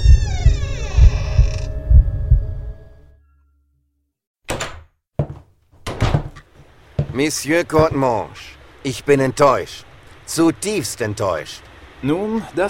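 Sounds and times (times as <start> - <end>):
door creaking open inward: 0.0 - 2.0, 4.5 - 6.5
low throbbing thuds: 0.0 - 2.8
sharp wooden knocks and thunks: 4.5 - 8.0
speech: 7.2 - 12.6.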